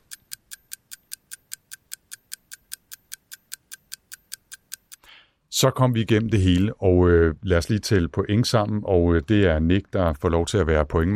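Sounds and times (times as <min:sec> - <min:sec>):
clock timer ticking rapidly: 0:00.0 - 0:05.1
speech: 0:05.6 - 0:11.1.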